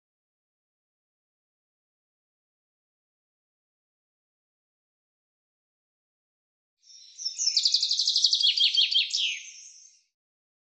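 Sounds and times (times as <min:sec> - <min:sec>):
bird call trill: 0:07.1 - 0:10.0.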